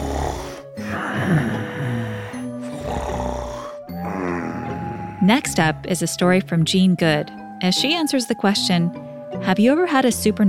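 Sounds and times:
father snoring loudly: 0.0 - 5.6
speech: 1.3 - 1.6, 5.3 - 10.4.

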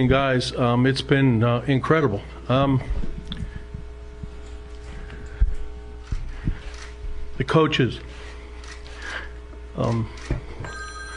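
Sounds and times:
speech: 0.0 - 3.0, 7.4 - 8.3, 9.8 - 10.8
telephone ringing with a steady electronic tone: 10.6 - 11.1.

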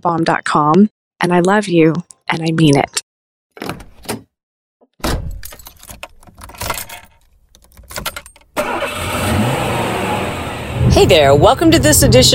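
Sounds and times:
speech: 0.0 - 3.0, 11.0 - 12.3
keys jingling and clattering inside a car: 5.3 - 8.5
car engine starting and running: 8.6 - 12.3.

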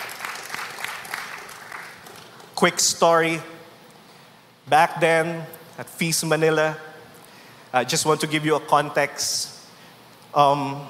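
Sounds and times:
crowd applauding as a clap offering: 0.0 - 2.5
speech: 2.6 - 3.5, 4.7 - 6.9, 7.7 - 9.5, 10.3 - 10.8.

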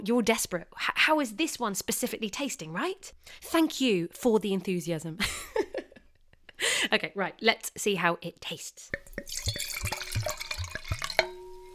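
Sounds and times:
speech: 0.0 - 5.6, 6.6 - 9.1
bright clink of glass: 8.9 - 11.7
wine glugging into a glass: 8.9 - 11.7.

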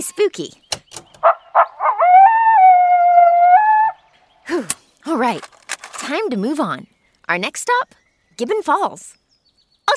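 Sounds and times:
speech: 0.0 - 2.2, 4.5 - 9.2
coyote yipping and howling at night: 1.2 - 4.1.

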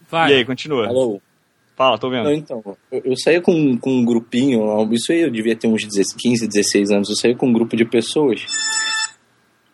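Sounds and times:
speech: 0.1 - 8.9
mobile phone ringtone from a phone on the floor: 8.5 - 9.2.

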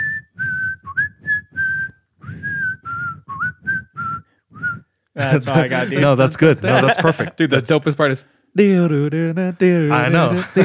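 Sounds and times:
person whistling a short bouncy tune: 0.0 - 5.0
laughter: 5.2 - 7.6, 10.1 - 10.6
speech: 5.2 - 10.6.

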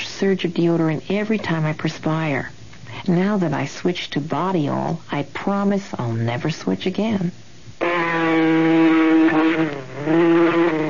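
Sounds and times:
speech: 0.2 - 7.5, 8.1 - 8.9
mosquito whining buzz: 7.8 - 10.8.

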